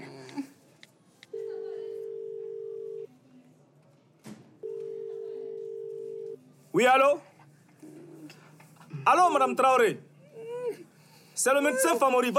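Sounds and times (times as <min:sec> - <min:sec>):
faint noise: 0:00.0 - 0:12.3
ringback tone of an outgoing telephone call from a delivery room: 0:01.4 - 0:03.1, 0:04.6 - 0:06.4
speech: 0:06.8 - 0:07.3, 0:09.1 - 0:10.0, 0:11.4 - 0:12.3.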